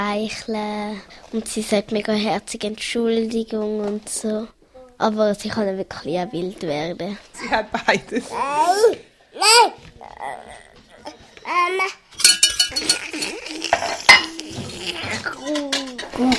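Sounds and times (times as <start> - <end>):
speech: 0.0 - 10.6, 15.5 - 16.3
small child babbling and squealing while playing at cooking: 8.3 - 12.0, 12.7 - 16.3
whisk banging against a pan: 12.2 - 13.0.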